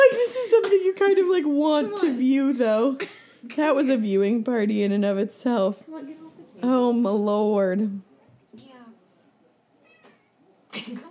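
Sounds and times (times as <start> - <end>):
speech: 1.0 - 8.1, 10.8 - 11.0
cat meowing and yowling: 9.8 - 10.4.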